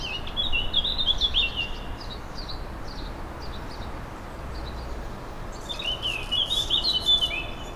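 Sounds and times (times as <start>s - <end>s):
birds chirping and singing outdoors in bright rapid trills: 0.0s - 3.8s, 5.6s - 7.7s.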